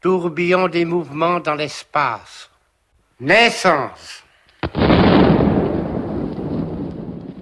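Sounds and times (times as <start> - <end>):
speech: 0.0 - 2.5, 3.2 - 5.3
heavy artillery shell explosion: 4.6 - 7.3.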